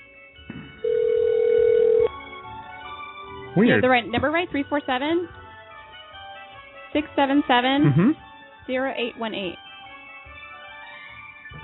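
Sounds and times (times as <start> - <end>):
telephone ringback tone on a long-distance internet phone call: 0.8 - 2.1
speech: 3.6 - 5.4, 6.9 - 9.6.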